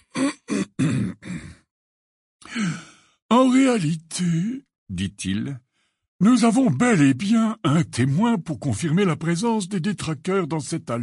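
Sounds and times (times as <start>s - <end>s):
person clearing throat: 0.0s - 1.7s
speech: 3.5s - 11.0s.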